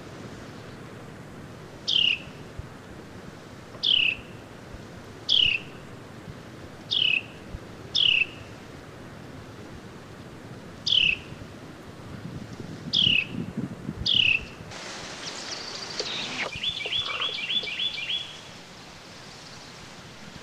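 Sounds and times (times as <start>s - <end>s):
Carolina wren calling: 1.9s - 2.4s, 3.8s - 4.3s, 5.3s - 5.8s, 6.9s - 8.5s, 10.8s - 11.4s, 13.0s - 13.3s, 14.1s - 14.5s, 15.1s - 18.6s.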